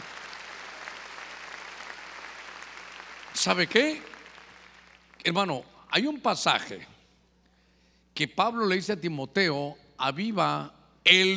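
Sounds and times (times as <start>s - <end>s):
audience clapping loudly: 0.0s - 5.3s
speech: 3.4s - 4.1s, 5.2s - 6.9s, 8.2s - 11.3s.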